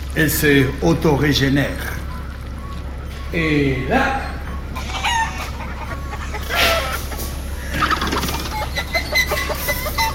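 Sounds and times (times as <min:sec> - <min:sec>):
speech: 0:00.2 - 0:02.0, 0:03.3 - 0:04.4
chickens clucking and squawking in a coop: 0:03.3 - 0:10.1
rooster crowing: 0:04.8 - 0:07.2.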